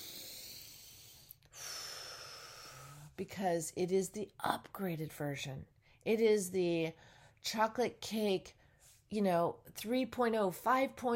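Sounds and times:
deep breath: 0:00.0 - 0:03.2
speech: 0:03.2 - 0:11.1.

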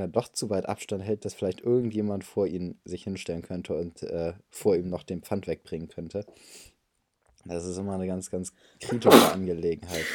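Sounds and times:
speech: 0:00.0 - 0:06.7, 0:07.4 - 0:10.1
person sneezing: 0:08.8 - 0:10.1.

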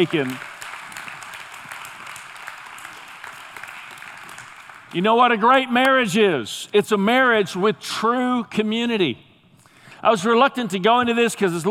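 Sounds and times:
speech: 0:00.0 - 0:00.5, 0:04.9 - 0:09.3, 0:10.0 - 0:11.7
crowd applauding: 0:00.0 - 0:05.4.

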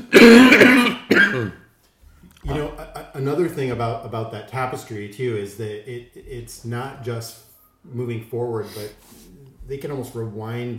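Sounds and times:
person clearing throat: 0:00.0 - 0:01.6
person coughing: 0:00.0 - 0:01.6
speech: 0:00.1 - 0:01.6, 0:02.4 - 0:10.7.

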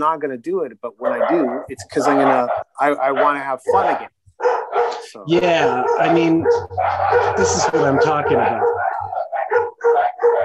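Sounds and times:
speech: 0:00.0 - 0:04.1, 0:05.1 - 0:08.7
dogs barking: 0:00.8 - 0:10.4.

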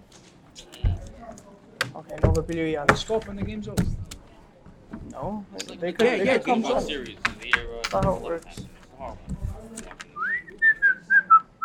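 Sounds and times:
faint low murmuring: 0:00.0 - 0:11.6
speech: 0:02.2 - 0:04.0, 0:05.2 - 0:07.3, 0:07.9 - 0:09.3
person whistling a short wavering tune: 0:10.2 - 0:11.6.

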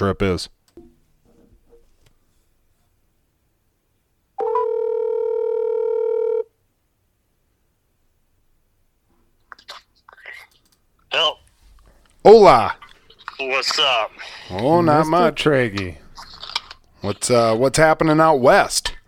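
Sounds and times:
speech: 0:00.0 - 0:00.6, 0:12.2 - 0:12.8, 0:13.4 - 0:16.0, 0:17.0 - 0:19.0
phone ringback tone: 0:04.4 - 0:06.5
faint clicks: 0:10.4 - 0:10.8.

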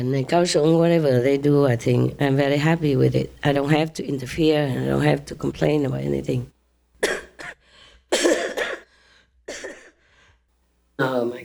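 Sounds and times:
speech: 0:00.0 - 0:06.6
harsh wet coughing: 0:07.0 - 0:10.0.

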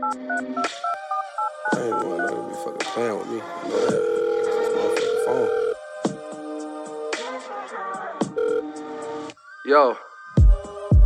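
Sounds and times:
phone line tones and clicks of a call going to voicemail: 0:00.0 - 0:02.6, 0:03.8 - 0:05.8, 0:08.4 - 0:08.7
phone call ringback tone: 0:00.0 - 0:05.8, 0:08.4 - 0:08.7
speech: 0:01.7 - 0:04.2, 0:09.7 - 0:10.0.

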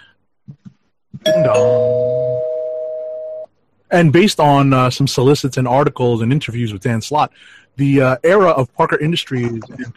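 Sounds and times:
spoiler bell sound effect: 0:01.2 - 0:03.5
speech: 0:01.4 - 0:02.1, 0:03.9 - 0:09.9.

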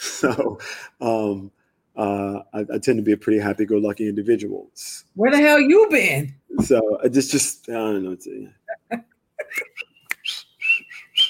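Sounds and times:
speech: 0:00.2 - 0:09.9
person whistling a bouncy TV theme tune: 0:09.8 - 0:11.2.

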